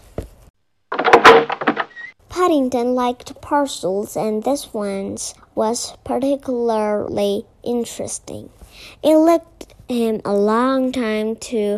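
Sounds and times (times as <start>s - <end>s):
door thud: 0.9s - 2.2s
speech: 2.4s - 11.7s.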